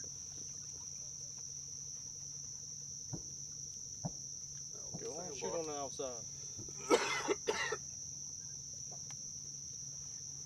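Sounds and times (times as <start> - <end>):
speech: 5.3 - 7.7
man coughing to clear morning mucus in a duck blind: 6.8 - 7.8.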